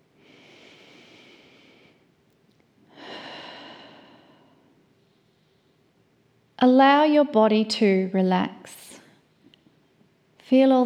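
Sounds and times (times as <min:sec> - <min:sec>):
deep slow breath during a relaxation exercise: 0:00.2 - 0:02.1, 0:02.9 - 0:05.8
speech: 0:06.6 - 0:08.8, 0:10.5 - 0:10.8.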